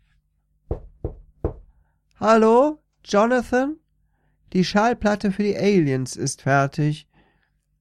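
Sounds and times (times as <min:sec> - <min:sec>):
firm knocks on a door: 0:00.7 - 0:01.7
speech: 0:02.2 - 0:03.8, 0:04.5 - 0:07.1.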